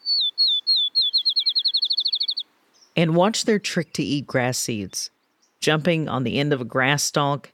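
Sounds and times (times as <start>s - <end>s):
field sparrow singing whistled notes into a bouncing trill: 0.0s - 6.5s
speech: 3.0s - 7.5s.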